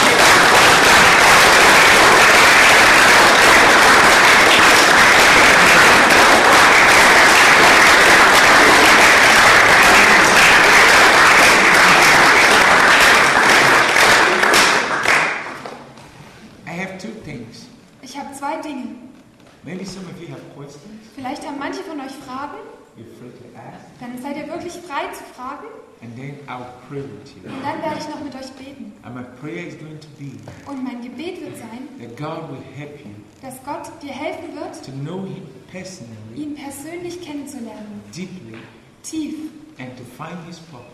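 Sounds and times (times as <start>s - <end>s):
crowd applauding: 0.0s - 15.9s
speech: 31.6s - 40.9s.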